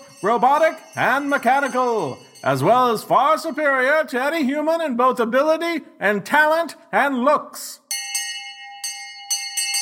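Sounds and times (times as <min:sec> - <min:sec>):
small metallic bell ringing: 0:00.0 - 0:04.2, 0:07.9 - 0:09.7
speech: 0:00.2 - 0:07.8.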